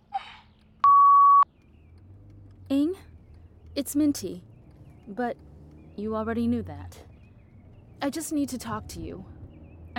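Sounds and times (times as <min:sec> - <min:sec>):
single steady electronic voicemail beep: 0:00.8 - 0:01.4
speech: 0:03.8 - 0:04.5, 0:05.1 - 0:07.1, 0:08.0 - 0:09.3.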